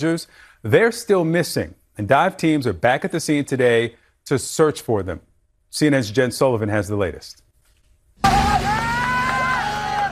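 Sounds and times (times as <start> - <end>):
speech: 0.0 - 7.4
high voice crying out over the crowd: 8.2 - 10.1
loud excited crowd shouting and cheering at a reunion: 8.2 - 10.1
steady low hum: 8.2 - 10.1.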